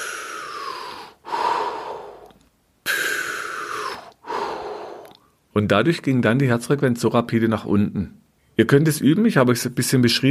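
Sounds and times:
deep belly breaths: 0.0 - 5.4
speech: 5.6 - 10.3.

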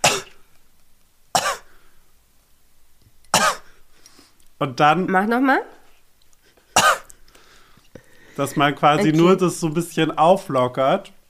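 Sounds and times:
gentle huffing coughs in place of a full cough: 0.0 - 0.4, 1.4 - 1.8, 3.3 - 3.8, 6.6 - 7.2
speech: 4.6 - 5.8, 8.4 - 11.2.

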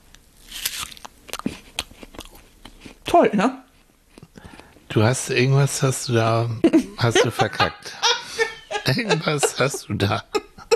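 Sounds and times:
crisp crunching bites into an apple: 0.1 - 3.1
speech: 3.1 - 3.6, 5.0 - 8.1, 8.9 - 10.4
laughter: 6.7 - 10.7.

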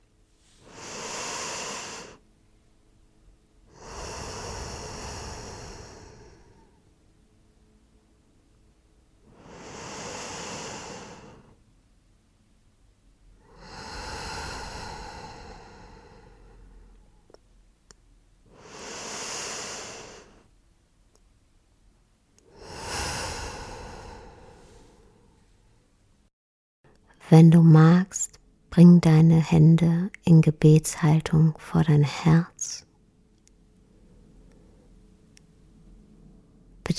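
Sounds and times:
slow deep breathing during a guided meditation: 0.4 - 2.2, 3.7 - 6.9, 9.2 - 11.6, 13.4 - 17.4, 18.5 - 20.5, 22.4 - 25.8
speech: 27.3 - 32.9.

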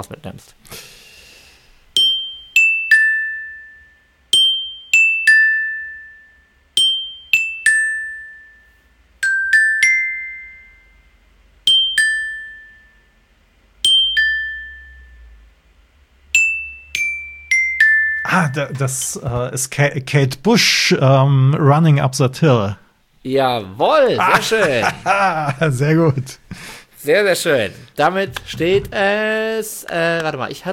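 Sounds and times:
speech: 0.0 - 1.0, 18.4 - 30.7
glockenspiel playing a pop melody: 2.0 - 15.5, 16.3 - 18.8
laughter: 23.9 - 26.6.

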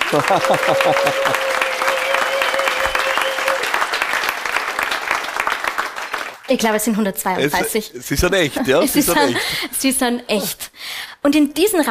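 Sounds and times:
laughter: 0.0 - 3.6, 7.5 - 9.8
scattered cheers from the audience: 0.0 - 6.4
live audience of about 132 people applauding: 0.0 - 6.9
speech: 0.1 - 1.6, 6.5 - 11.8.

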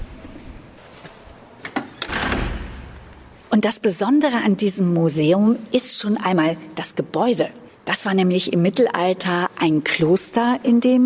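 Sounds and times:
door handle and latch noise: 1.6 - 3.3
museum door opening and closing: 1.6 - 3.4
speech: 3.6 - 11.0.

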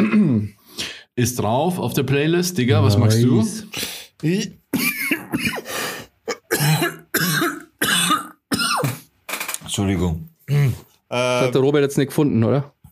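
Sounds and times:
harsh rasping coughing fit: 0.0 - 0.6, 4.7 - 9.1
speech: 1.2 - 5.6, 9.8 - 12.8.

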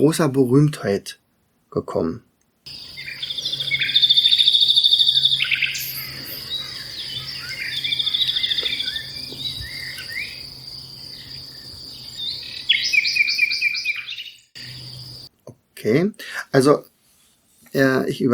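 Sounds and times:
speech: 0.0 - 2.9, 15.8 - 16.9, 17.7 - 18.3
crickets chirring: 2.7 - 15.3
nightingale singing varied phrases of trills and whistles: 2.7 - 15.3.

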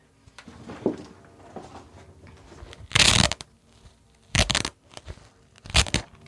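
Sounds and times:
faint rustling handling noise: 0.2 - 5.9
velcro fastener being pulled apart: 2.7 - 6.1.

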